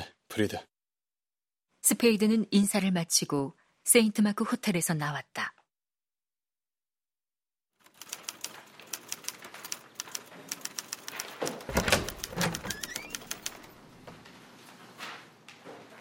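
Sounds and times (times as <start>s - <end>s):
speech: 0.4s - 0.7s, 1.8s - 5.6s
typewriter clacking in an office: 7.8s - 13.8s.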